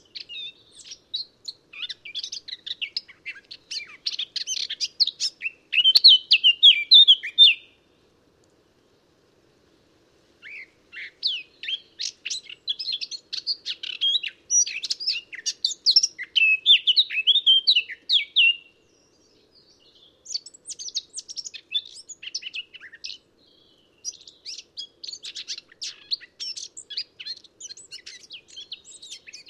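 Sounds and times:
Eurasian blackcap Sylvia atricapilla warbling song: 0.0 - 7.8, 10.4 - 18.7, 19.6 - 29.4.

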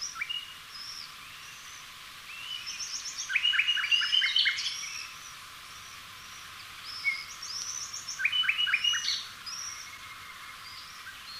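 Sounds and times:
common nightingale Luscinia megarhynchos singing: 0.0 - 11.3.

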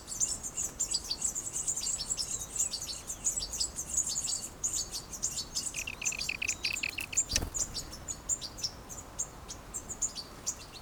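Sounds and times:
soft background hiss: 0.4 - 10.7
European goldfinch Carduelis carduelis chattering: 4.7 - 8.4.

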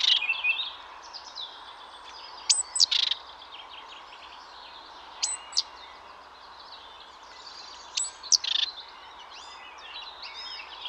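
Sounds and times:
chorus of other small birds chirping: 0.0 - 10.8
great tit Parus major sharp high sweeping calls: 2.0 - 3.3, 5.1 - 6.0, 7.3 - 10.8.

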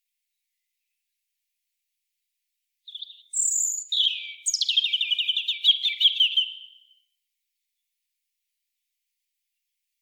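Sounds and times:
European robin Erithacus rubecula song: 2.9 - 7.0.

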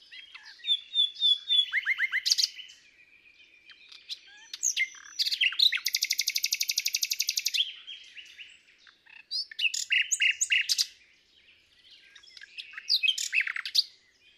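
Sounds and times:
common nightingale singing, Luscinia megarhynchos: 0.0 - 14.3.

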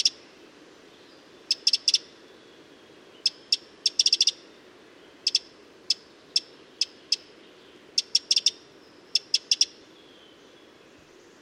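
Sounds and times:
Eurasian wren Troglodytes troglodytes giving hard dry tick calls: 0.0 - 0.2, 1.5 - 2.1, 3.2 - 4.4, 5.2 - 7.3, 7.9 - 9.8.

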